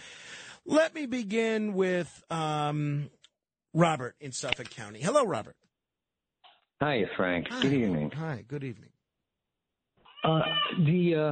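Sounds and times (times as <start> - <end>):
speech: 0.7 - 5.6, 6.8 - 8.9, 10.2 - 11.2
cat meowing over a phone line: 10.1 - 10.9.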